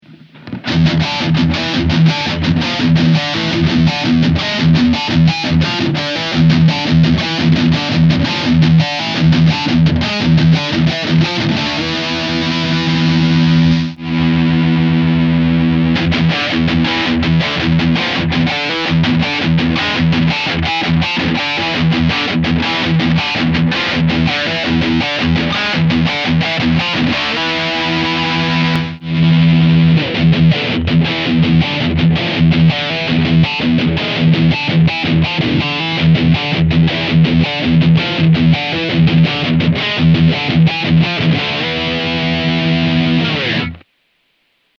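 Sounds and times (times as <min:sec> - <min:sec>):
guitar through dual distortion pedal and cab rig: 0:00.0 - 0:44.7.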